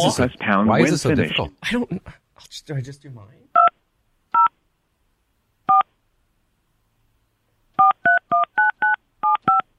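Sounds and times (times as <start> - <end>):
speech: 0.0 - 3.7
phone keypad tones dialing a cell phone number: 7.8 - 9.7.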